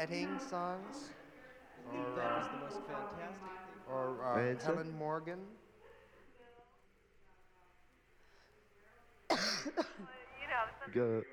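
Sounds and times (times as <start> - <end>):
speech: 0.0 - 1.2, 1.8 - 5.6, 9.6 - 11.3
faint hum: 0.0 - 11.3
person coughing harshly: 9.3 - 10.1.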